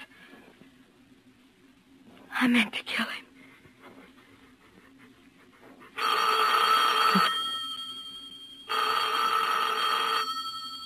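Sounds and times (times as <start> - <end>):
speech: 2.4 - 3.2
telephone bell ringing: 6.0 - 10.8.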